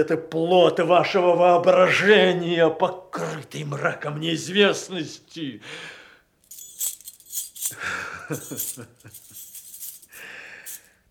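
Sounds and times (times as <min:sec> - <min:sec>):
speech: 0:00.0 - 0:06.0, 0:07.7 - 0:09.4
bunch of keys thrown down and jangling: 0:06.5 - 0:10.9.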